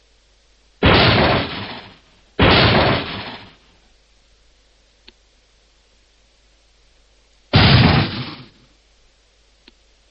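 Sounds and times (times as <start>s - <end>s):
gunshots ringing out through a guesthouse: 0.8s - 3.6s, 7.6s - 8.6s.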